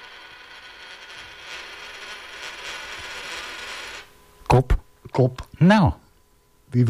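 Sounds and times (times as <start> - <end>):
tossed coin rolling and rattling across a tabletop: 0.0 - 4.1
speech: 4.6 - 6.0.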